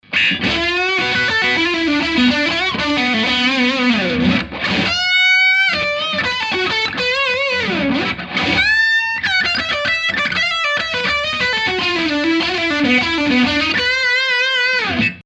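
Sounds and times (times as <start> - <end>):
Strat electric guitar on neck and middle pickups: 0.0 - 15.2.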